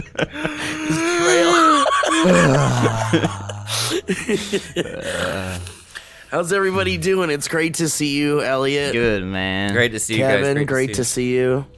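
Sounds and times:
speech: 0:00.0 - 0:01.4, 0:02.2 - 0:05.7, 0:06.3 - 0:11.7
laughter: 0:00.0 - 0:05.6
long drawn-out human yawn: 0:02.2 - 0:03.2.

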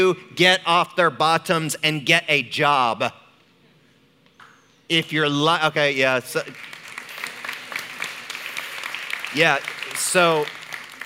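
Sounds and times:
speech: 0:00.0 - 0:03.2, 0:04.9 - 0:06.7, 0:09.3 - 0:10.6
audience applauding: 0:06.4 - 0:11.0.

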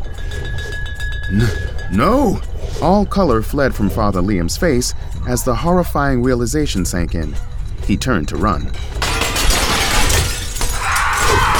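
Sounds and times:
glass shards scattering and falling: 0:00.0 - 0:03.2, 0:06.4 - 0:11.5
speech: 0:01.3 - 0:09.0
window glass shattering: 0:08.8 - 0:11.5.

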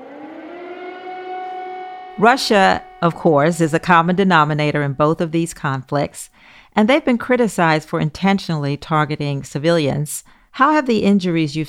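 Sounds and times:
air raid siren wailing: 0:00.0 - 0:04.6
speech: 0:02.2 - 0:11.6.

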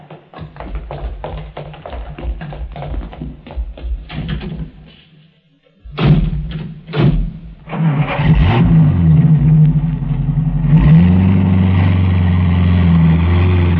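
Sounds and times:
car engine cranking, catching and revving into a rumbling idle: 0:07.0 - 0:13.7.

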